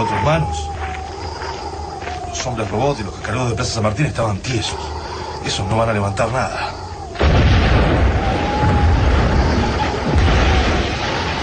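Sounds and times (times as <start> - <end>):
speech: 0.0 - 0.8, 2.4 - 6.8
muffled explosion: 7.2 - 11.4.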